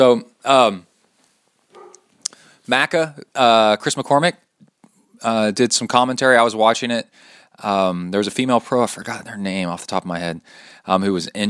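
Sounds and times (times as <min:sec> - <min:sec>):
speech: 0:00.0 - 0:00.9, 0:02.7 - 0:04.4, 0:05.2 - 0:11.4
dog barking: 0:01.7 - 0:02.1
faint yelp: 0:01.7 - 0:02.4.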